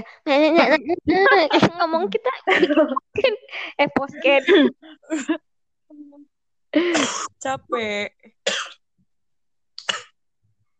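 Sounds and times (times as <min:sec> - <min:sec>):
speech: 0:00.0 - 0:05.4, 0:06.8 - 0:08.2
laughter: 0:00.3 - 0:03.3
man coughing: 0:06.8 - 0:07.4, 0:08.5 - 0:08.8.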